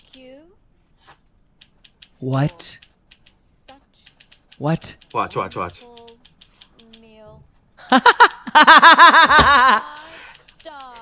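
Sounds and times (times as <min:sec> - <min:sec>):
speech: 0:00.1 - 0:01.2, 0:02.2 - 0:02.9, 0:04.6 - 0:05.9, 0:07.9 - 0:09.9
typewriter keys clacking: 0:01.6 - 0:07.1, 0:09.8 - 0:11.0
laughter: 0:07.8 - 0:10.4.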